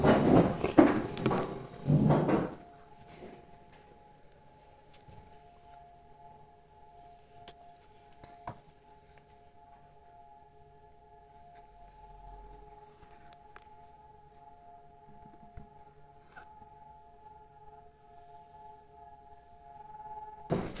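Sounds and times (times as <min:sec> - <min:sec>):
rustling and handling noise: 0:00.0 - 0:10.5, 0:11.1 - 0:16.8
civil-defense siren sounding for a memorial silence: 0:00.0 - 0:20.7.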